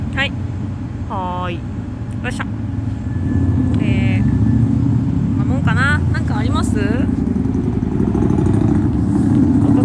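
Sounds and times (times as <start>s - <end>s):
speech: 0.2s - 0.4s, 1.1s - 2.6s
very loud motorcycle roaring past outside between buildings: 2.6s - 9.8s.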